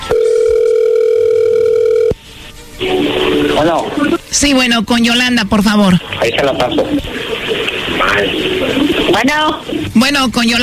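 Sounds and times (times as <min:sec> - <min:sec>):
telephone call ring tone: 0:00.0 - 0:02.2
speech: 0:03.6 - 0:10.6.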